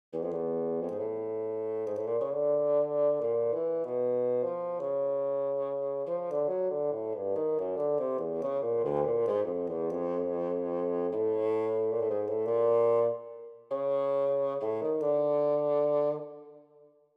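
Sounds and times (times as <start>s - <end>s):
bassoon melody: 0.2s - 16.9s.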